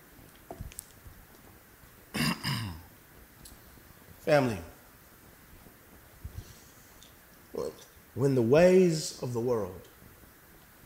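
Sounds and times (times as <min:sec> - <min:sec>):
man clearing his throat: 0:02.2 - 0:02.9
speech: 0:04.3 - 0:04.7, 0:08.2 - 0:09.9.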